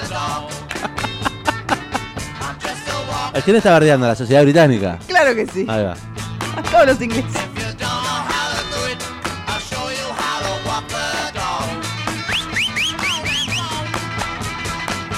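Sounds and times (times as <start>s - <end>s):
loud rock music with steady drums: 0.0s - 15.1s
laughter: 0.6s - 2.3s, 6.6s - 7.6s
speech: 3.4s - 6.1s, 6.7s - 7.5s
short rising whistle swoops: 12.2s - 13.8s.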